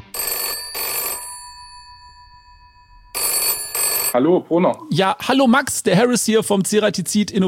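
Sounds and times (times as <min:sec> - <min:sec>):
telephone ringing for an outgoing call in bright electronic tone: 0:00.1 - 0:04.2
speech: 0:04.1 - 0:07.4.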